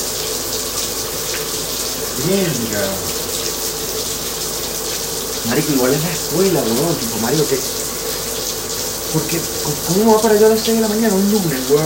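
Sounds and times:
cold water pouring from a tap: 0:00.0 - 0:11.8
person exclaiming: 0:02.1 - 0:03.2
speech: 0:02.2 - 0:03.2, 0:05.5 - 0:07.8, 0:09.1 - 0:11.8.

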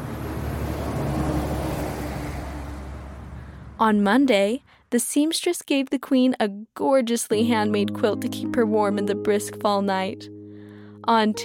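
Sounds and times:
truck engine rumbling: 0:00.0 - 0:04.0
road noise on a bumpy dirt road: 0:00.0 - 0:04.8
speech: 0:03.8 - 0:10.4, 0:11.1 - 0:11.4.

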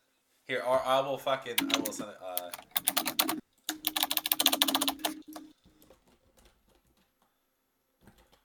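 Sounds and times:
speech: 0:00.5 - 0:03.4
typing on a computer keyboard: 0:01.6 - 0:07.0.

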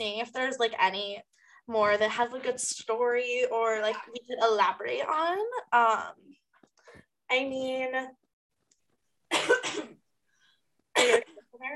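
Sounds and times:
speech: 0:00.0 - 0:06.4, 0:07.3 - 0:08.2, 0:11.0 - 0:11.7
person coughing from phlegm in the throat: 0:09.3 - 0:10.0, 0:11.0 - 0:11.4.

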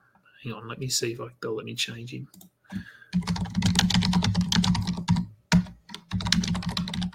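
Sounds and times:
speech: 0:00.4 - 0:03.6
typing on a computer keyboard: 0:03.1 - 0:07.1.

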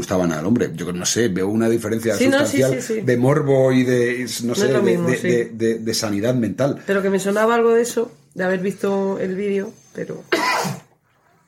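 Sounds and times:
speech: 0:00.0 - 0:10.8
loud explosive sneeze: 0:10.3 - 0:11.0.

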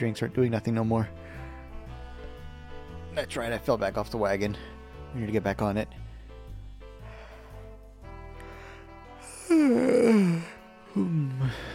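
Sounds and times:
speech: 0:00.0 - 0:01.4, 0:03.2 - 0:06.0
loud drawn-out yawn: 0:09.2 - 0:11.7.

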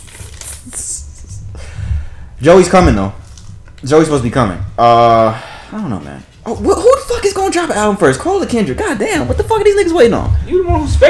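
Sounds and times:
snack wrapper crinkling and ripping open: 0:00.0 - 0:01.0
speech: 0:02.4 - 0:03.2, 0:03.8 - 0:11.0.

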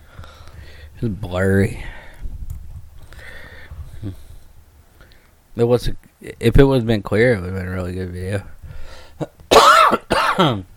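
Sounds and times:
speech: 0:01.0 - 0:02.0, 0:05.6 - 0:08.6, 0:10.4 - 0:10.7
raspy throaty coughing: 0:09.2 - 0:10.6.

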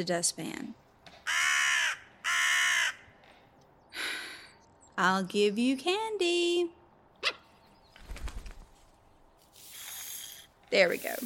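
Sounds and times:
speech: 0:00.0 - 0:01.4, 0:05.0 - 0:07.4, 0:10.7 - 0:11.2
raven cawing: 0:01.2 - 0:03.5.

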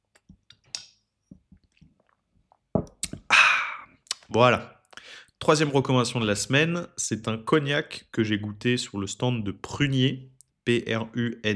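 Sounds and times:
faint mouth clicks: 0:02.8 - 0:05.1
speech: 0:04.3 - 0:04.8, 0:05.4 - 0:11.5.

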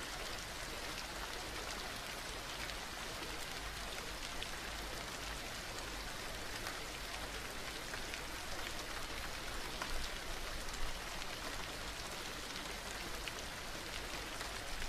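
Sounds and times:
rainfall: 0:00.0 - 0:14.8.

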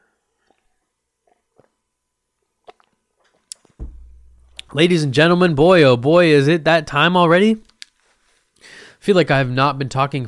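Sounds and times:
person sipping water with wet mouth clicks and gulps: 0:00.4 - 0:01.8, 0:02.6 - 0:03.7
dull knock: 0:03.8 - 0:04.8
speech: 0:04.7 - 0:07.7, 0:08.6 - 0:10.2.

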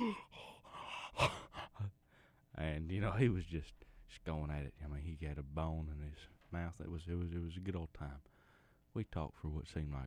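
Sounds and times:
man imitating heavy wheezy breathing of an old hound dog with a bad leg: 0:00.0 - 0:01.9
speech: 0:02.6 - 0:08.3, 0:08.9 - 0:10.0.

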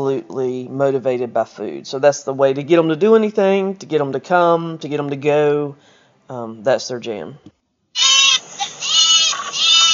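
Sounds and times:
speech: 0:00.0 - 0:08.1
goat bleating as transition sound: 0:08.0 - 0:09.9.

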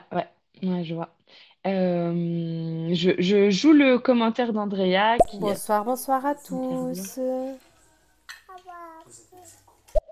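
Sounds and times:
speech: 0:00.1 - 0:07.6
small child babbling: 0:08.5 - 0:09.7.

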